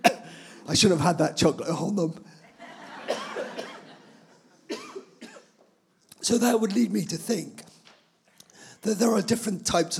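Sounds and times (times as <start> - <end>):
speech: 0.7 - 2.4, 6.3 - 7.7, 8.8 - 9.9
laughter: 2.5 - 4.7
person clearing throat: 4.7 - 5.6.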